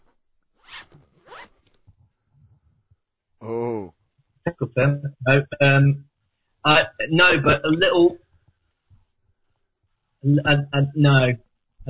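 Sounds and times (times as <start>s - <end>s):
zipper on a coach folder being zipped: 0.6s - 1.7s
speech: 4.6s - 8.2s, 10.2s - 11.8s.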